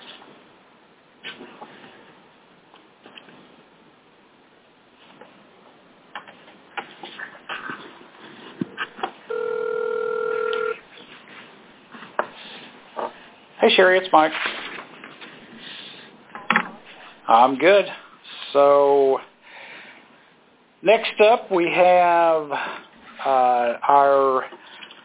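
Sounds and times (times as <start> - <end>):
phone number dialing clicks and short beeps: 9.3 - 10.8
steady electronic phone ringing tone: 9.3 - 10.8
speech: 13.8 - 14.6, 17.3 - 19.3, 20.9 - 24.6.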